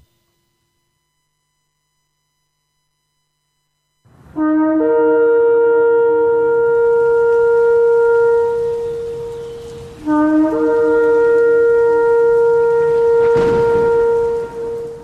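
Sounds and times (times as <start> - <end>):
loud horn blowing a long steady note: 4.1 - 15.0.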